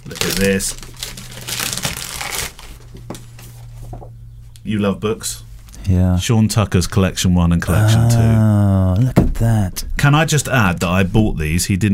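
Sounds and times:
plastic packaging crinkling and rustling while cut open with kitchen scissors: 0.0s - 3.4s
speech: 0.1s - 0.9s, 4.7s - 11.9s.

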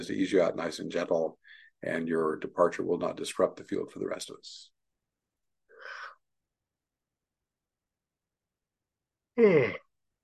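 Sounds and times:
speech: 0.0s - 4.7s, 9.4s - 9.8s
faint breathy sound: 1.4s - 1.8s, 5.7s - 6.2s
person yawning with a falling groaning tone: 9.4s - 9.9s.

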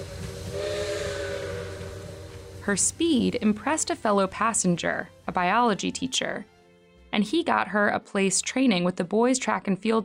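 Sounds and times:
steam train whistle blowing: 0.0s - 2.9s
escaping steam hissing: 0.0s - 4.8s
low rumbling: 0.0s - 4.8s
speech: 2.6s - 6.5s, 7.2s - 10.0s.

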